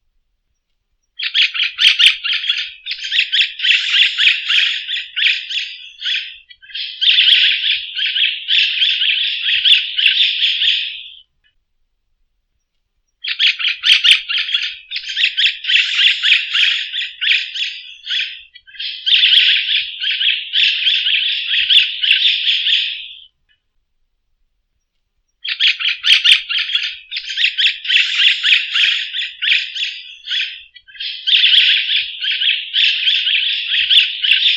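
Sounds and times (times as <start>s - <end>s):
green maitaca singing: 1.2s - 11.2s, 13.2s - 23.3s, 25.4s - 34.5s.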